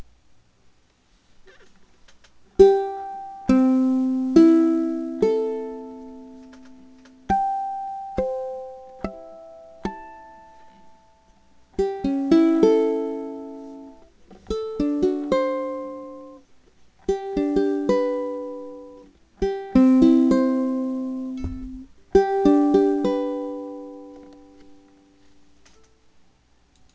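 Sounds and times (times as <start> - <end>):
ukuleles: 2.5 - 11.1, 11.8 - 26.0.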